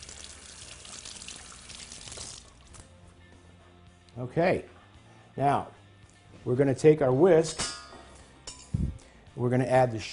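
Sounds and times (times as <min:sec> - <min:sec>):
running water from a tap rinsing hands during baking: 0:00.0 - 0:02.8
speech: 0:04.2 - 0:04.8, 0:05.4 - 0:05.8, 0:06.4 - 0:07.7, 0:09.4 - 0:10.1.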